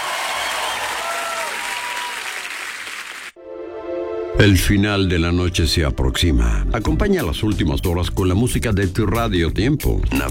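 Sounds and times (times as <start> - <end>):
dense applause from a large crowd: 0.0 - 3.4
speech: 4.4 - 10.3.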